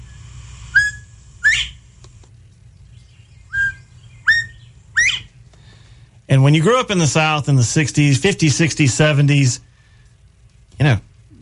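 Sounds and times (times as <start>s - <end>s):
short bright whistles sliding upward in pitch: 0.7s - 1.8s, 3.5s - 5.3s
speech: 6.3s - 9.7s, 10.8s - 11.1s.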